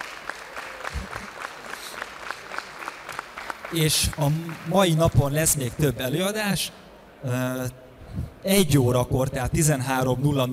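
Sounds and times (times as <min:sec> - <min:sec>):
sharper individual hand claps: 0:00.0 - 0:04.8
audience applause: 0:00.0 - 0:05.6
speech: 0:03.7 - 0:10.5.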